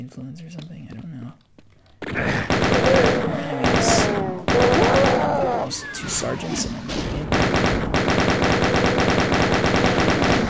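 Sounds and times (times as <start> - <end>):
speech: 0.0 - 1.5, 5.7 - 7.4
rapid shotgun gunfire in a first-person shooter video game: 2.0 - 6.4, 7.0 - 10.4.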